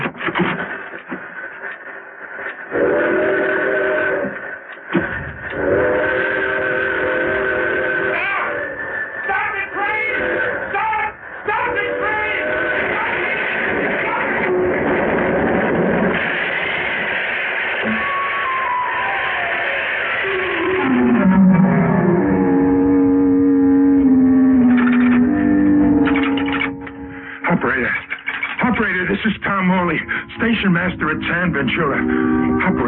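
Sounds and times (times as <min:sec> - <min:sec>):
train rumbling: 0:00.0 - 0:23.3, 0:24.0 - 0:32.8
train whistle sounding in harmonic blasts: 0:02.7 - 0:04.4, 0:05.0 - 0:14.9, 0:17.8 - 0:27.5, 0:30.0 - 0:32.8.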